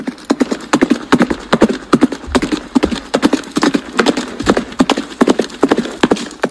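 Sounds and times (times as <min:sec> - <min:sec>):
horse hooves clip-clopping: 0:00.0 - 0:06.5.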